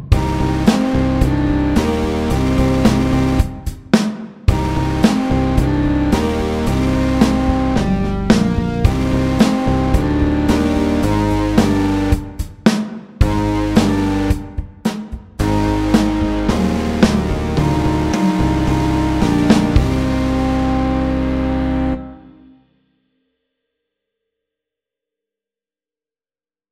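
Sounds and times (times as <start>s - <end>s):
medium tempo metal rock music: 0.2s - 4.0s, 4.5s - 12.6s, 13.2s - 14.6s, 15.4s - 22.2s.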